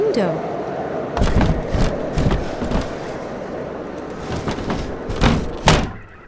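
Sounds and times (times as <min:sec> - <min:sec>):
speech: 0:00.2 - 0:00.5
wooden hut door thudding and knocking as it is shut: 0:01.2 - 0:06.2.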